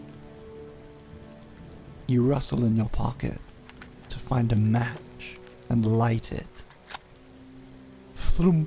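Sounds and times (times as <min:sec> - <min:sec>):
steady rain falling on a beach: 0:00.0 - 0:08.6
speech: 0:02.1 - 0:03.5, 0:04.3 - 0:06.6, 0:08.4 - 0:08.6.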